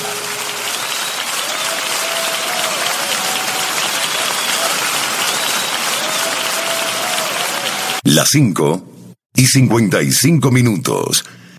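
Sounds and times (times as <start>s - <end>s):
audience clapping hands loudly: 0.0s - 8.2s
speech: 8.1s - 11.4s.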